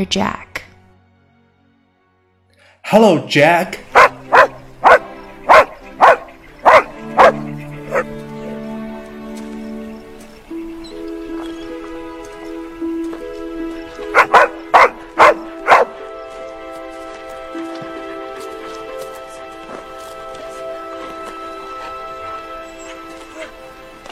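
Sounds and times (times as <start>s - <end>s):
speech: 0.0s - 0.4s, 2.9s - 4.2s
dog barking: 3.9s - 8.1s, 14.1s - 16.0s.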